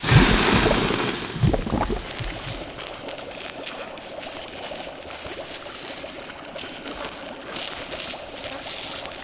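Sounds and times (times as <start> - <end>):
acid spray weapon: 0.0 - 2.7.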